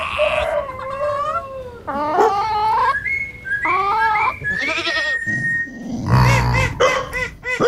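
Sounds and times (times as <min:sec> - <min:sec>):
other farm animal calls: 0:00.0 - 0:07.6
pet farm goats bleating: 0:04.5 - 0:05.3.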